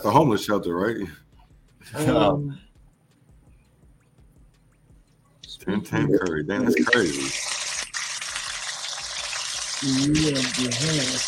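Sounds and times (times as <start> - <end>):
speech: 0.0 - 2.7, 5.6 - 7.5, 9.8 - 11.2
water running from a tap: 6.6 - 11.2.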